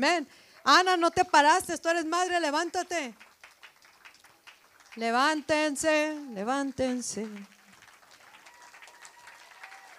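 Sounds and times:
speech: 0:00.0 - 0:03.3, 0:05.0 - 0:07.5
crowd applauding to honor God and mothers: 0:02.6 - 0:09.9.

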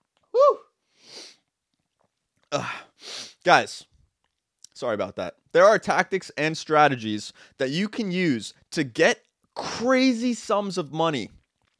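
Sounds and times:
breathy hiss of air: 0:00.9 - 0:01.4, 0:02.7 - 0:03.4
speech: 0:02.5 - 0:02.8, 0:03.4 - 0:03.9, 0:04.8 - 0:11.4.

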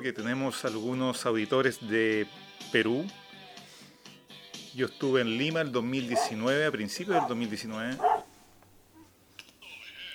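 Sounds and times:
speech: 0:00.0 - 0:03.2, 0:04.8 - 0:08.2
dog barking from neighboring pet shop: 0:06.1 - 0:06.4, 0:07.1 - 0:07.4, 0:08.0 - 0:08.4.

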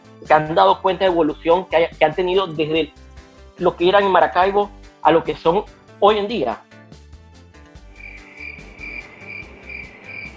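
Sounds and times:
speech: 0:00.2 - 0:03.0, 0:03.6 - 0:06.7
crickets chirping in a thin high trill: 0:07.9 - 0:10.3.

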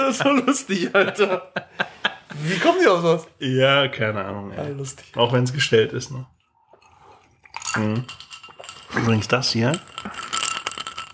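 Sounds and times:
laughter: 0:00.0 - 0:02.8
speech: 0:00.1 - 0:06.4, 0:07.7 - 0:08.2, 0:08.9 - 0:10.3
ice cubes rattling in a glass of plain water: 0:07.5 - 0:11.1.

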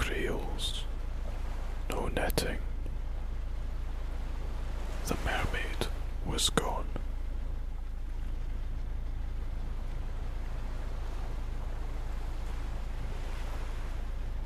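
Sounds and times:
deep wind rumble: 0:00.0 - 0:14.4
water sloshing against a boat's hull: 0:00.0 - 0:14.4
speech: 0:06.4 - 0:06.7.

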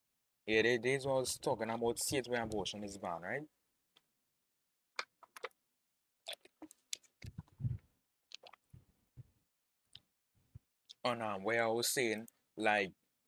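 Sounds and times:
speech: 0:00.5 - 0:03.6, 0:11.0 - 0:13.0
person drinking water: 0:06.2 - 0:09.0
squishy swallowing gulps: 0:06.2 - 0:09.3.

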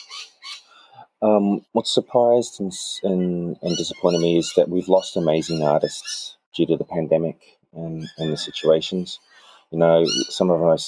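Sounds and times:
several birds squawking and chirping together: 0:00.0 - 0:01.0, 0:02.8 - 0:06.5, 0:07.8 - 0:10.8
speech: 0:01.2 - 0:10.8.

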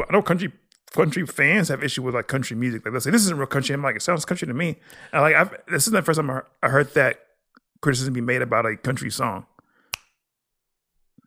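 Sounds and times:
speech: 0:00.0 - 0:09.5
finger snap used as percussion in country music: 0:09.9 - 0:10.3.

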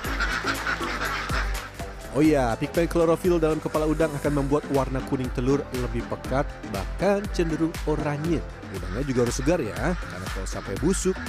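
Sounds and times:
flock of laying ducks quacking in a pen: 0:00.0 - 0:02.2, 0:06.9 - 0:11.2
speech: 0:02.2 - 0:11.2.

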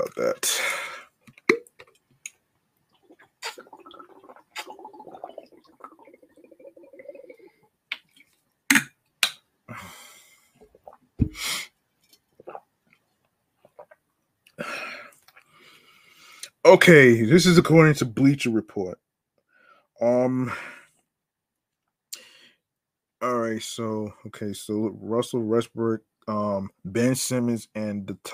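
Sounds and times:
speech: 0:00.0 - 0:00.8, 0:16.7 - 0:19.0, 0:20.3 - 0:20.7, 0:23.6 - 0:28.3
person sipping water: 0:00.6 - 0:08.9, 0:10.6 - 0:11.5, 0:12.1 - 0:12.7, 0:13.6 - 0:15.5.

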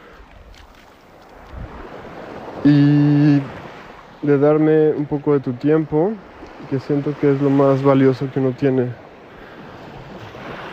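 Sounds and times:
calm sea waves washing without wind: 0:00.0 - 0:10.7
speech: 0:02.6 - 0:03.5, 0:04.2 - 0:09.0.

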